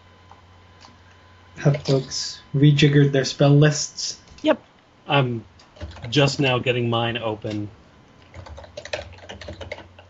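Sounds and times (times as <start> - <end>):
low hum: 0.0 - 10.0
speech: 1.6 - 7.8
computer keyboard typing: 5.6 - 6.2, 8.2 - 10.0.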